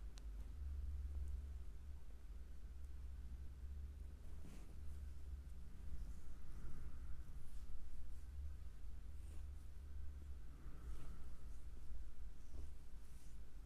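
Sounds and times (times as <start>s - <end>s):
steady low hum: 0.0s - 13.6s
soft rubbing and brushing against skin during a foot massage: 4.2s - 13.6s.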